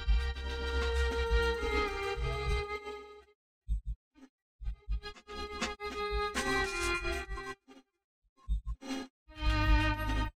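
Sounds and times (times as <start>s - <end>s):
imitated violin sound: 0.2s - 3.2s, 4.9s - 7.6s, 9.3s - 10.3s.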